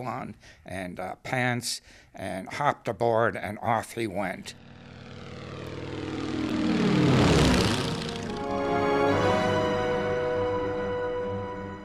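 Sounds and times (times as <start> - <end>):
speech: 0.0 - 4.7
Wright Flyer B model airplane propeller engine droning overhead on a cold day: 4.3 - 11.0.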